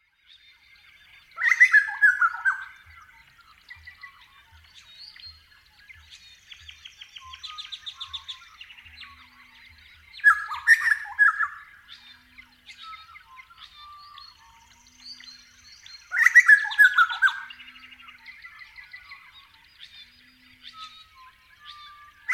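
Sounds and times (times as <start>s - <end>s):
Grey Butcherbird song: 0.0s - 22.3s.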